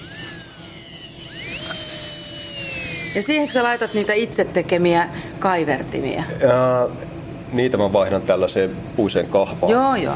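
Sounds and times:
jeweler's micromotor drill spinning: 0.0s - 4.4s
speech: 3.2s - 10.1s.

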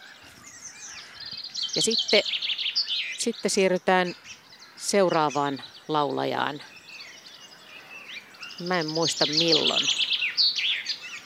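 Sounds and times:
common chaffinch singing: 0.0s - 11.2s
faint chorus of birds: 0.0s - 11.2s
speech: 1.8s - 2.5s, 3.2s - 4.2s, 4.8s - 6.7s, 8.6s - 10.0s.

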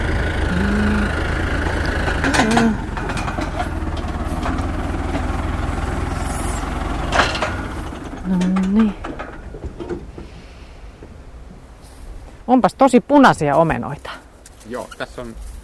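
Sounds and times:
tractor engine idling while parked in an apple orchard: 0.0s - 10.4s
clanks and knocks: 1.6s - 10.4s
speech: 12.6s - 14.1s, 14.7s - 15.5s.

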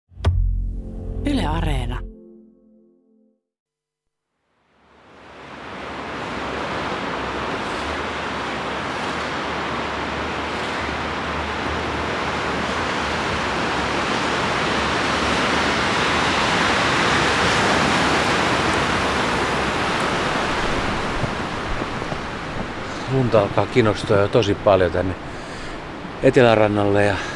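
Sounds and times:
speech: 1.5s - 2.1s, 23.3s - 25.3s, 26.2s - 27.3s
strong wind in a snowstorm by the sea: 5.4s - 26.2s.

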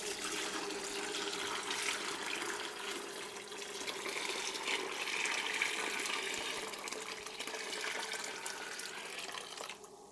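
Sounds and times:
liquid pouring and splashing into a bucket: 0.0s - 10.0s.

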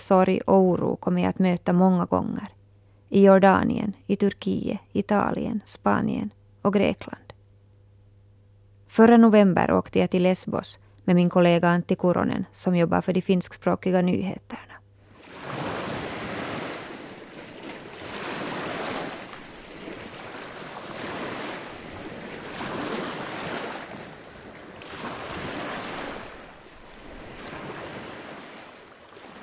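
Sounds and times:
speech: 0.1s - 7.2s, 9.0s - 14.7s
waves breaking on a beach on Lesbos in November: 15.1s - 29.4s.

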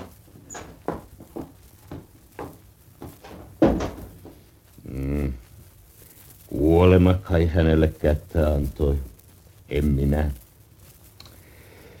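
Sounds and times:
wooden door opening and closing: 0.0s - 0.8s
speech: 6.9s - 9.1s, 9.7s - 10.4s.

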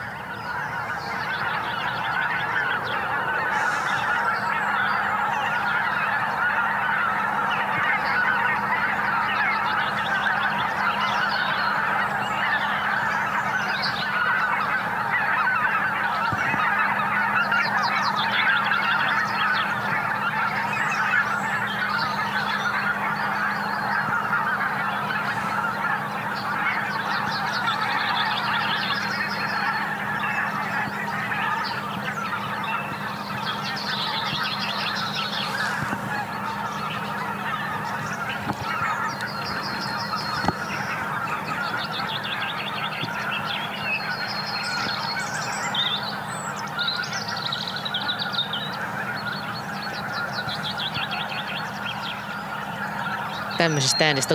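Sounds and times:
flock of returning geese honking: 0.0s - 54.3s
speech: 53.6s - 54.3s.

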